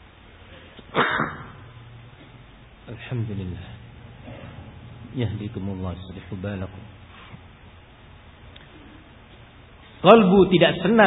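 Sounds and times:
hiss: 0:00.0 - 0:11.0
person sneezing: 0:00.9 - 0:01.6
speech: 0:03.1 - 0:03.8, 0:05.2 - 0:06.9, 0:10.0 - 0:11.0.

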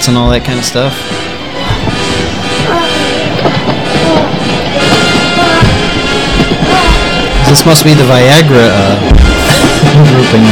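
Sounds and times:
speech: 0:00.0 - 0:01.3, 0:07.5 - 0:10.5
train rumbling by: 0:00.0 - 0:10.5.

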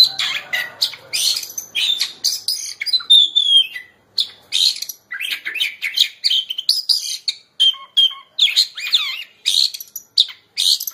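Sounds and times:
Oriental magpie-robin singing scratchy chirps and whistled notes: 0:00.0 - 0:10.9.

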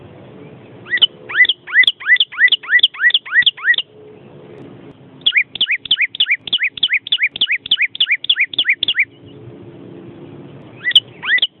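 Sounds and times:
bird singing quick upswept whistled notes: 0:00.8 - 0:03.9, 0:05.2 - 0:09.3, 0:10.8 - 0:11.5.

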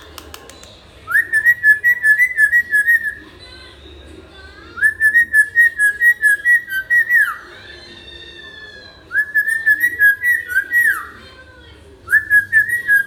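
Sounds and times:
hill myna singing: 0:01.1 - 0:03.2, 0:04.8 - 0:07.5, 0:09.1 - 0:11.2, 0:12.1 - 0:13.0.

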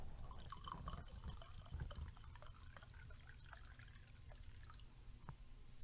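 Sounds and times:
faint dripping: 0:00.1 - 0:05.4
red wine pouring into a stemmed glass: 0:00.2 - 0:04.9.

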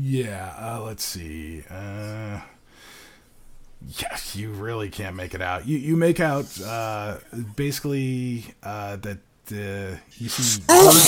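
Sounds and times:
speech: 0:00.0 - 0:03.0, 0:03.8 - 0:11.0
loud sharp sneeze: 0:10.3 - 0:11.0.

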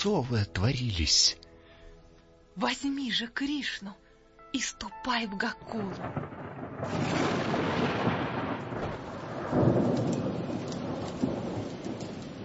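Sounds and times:
speech: 0:00.0 - 0:01.4, 0:02.6 - 0:07.6
heavy rain in a nighttime storm: 0:05.8 - 0:12.4
thunder rumbling in a nighttime storm: 0:05.8 - 0:12.4.

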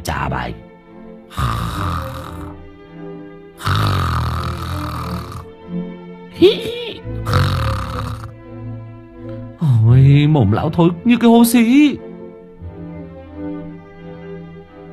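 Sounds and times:
speech: 0:00.0 - 0:00.7, 0:01.3 - 0:02.2, 0:06.4 - 0:08.1, 0:10.1 - 0:12.1
old man grunting in bed: 0:01.3 - 0:02.6, 0:03.6 - 0:05.5, 0:06.4 - 0:08.3
old man snoring loudly in bed: 0:01.3 - 0:02.6, 0:03.6 - 0:05.6, 0:07.1 - 0:08.4.

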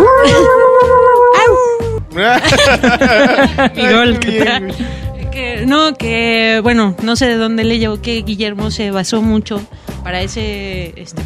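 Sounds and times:
sad dog howling and whimpering: 0:00.0 - 0:02.0
laughter: 0:02.2 - 0:05.0
speech: 0:02.2 - 0:11.2.

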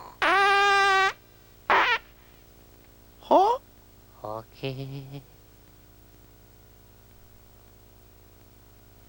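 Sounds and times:
comic fart sound effect in an animated scene: 0:00.0 - 0:02.0
speech: 0:04.6 - 0:05.4.

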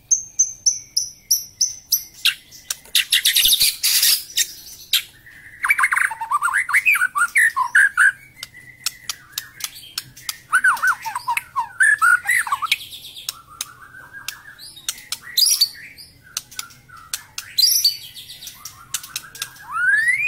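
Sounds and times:
white-rumped shama singing: 0:00.0 - 0:20.2.

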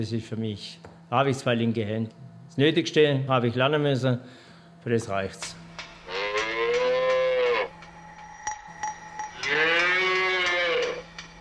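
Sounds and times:
speech: 0:00.0 - 0:05.6
steady hum: 0:00.0 - 0:11.3
young heifers mooing in a dairy-farm barn: 0:06.1 - 0:07.7, 0:09.4 - 0:11.0.

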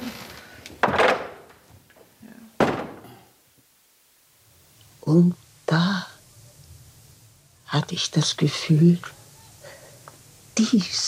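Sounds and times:
wooden window shutters being closed in a room: 0:00.7 - 0:03.2
speech: 0:05.1 - 0:06.1, 0:07.9 - 0:09.2, 0:10.6 - 0:11.0.

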